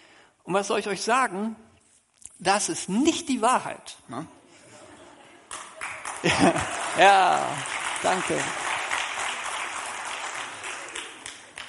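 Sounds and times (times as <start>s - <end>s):
speech: 0.5s - 1.7s, 2.4s - 4.4s, 6.2s - 8.6s
laughter: 4.5s - 7.6s
crowd applauding: 5.5s - 11.6s
sharp individual claps: 5.5s - 11.6s.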